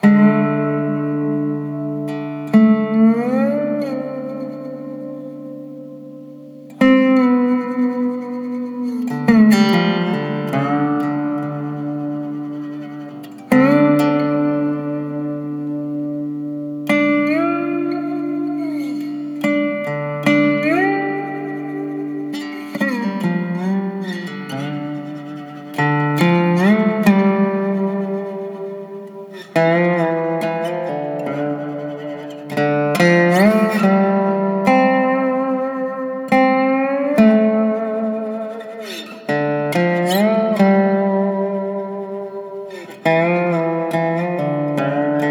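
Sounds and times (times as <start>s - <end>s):
Dobro resonator guitar: 0.0s - 45.2s.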